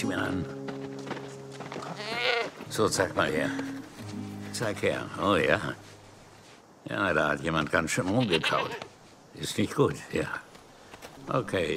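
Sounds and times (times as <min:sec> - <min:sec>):
speech: 0:00.0 - 0:00.6, 0:02.7 - 0:03.8, 0:04.6 - 0:06.0, 0:06.8 - 0:10.4, 0:11.2 - 0:11.7
low steady hum: 0:00.0 - 0:06.8
goat bleating: 0:01.8 - 0:02.7, 0:08.1 - 0:08.9.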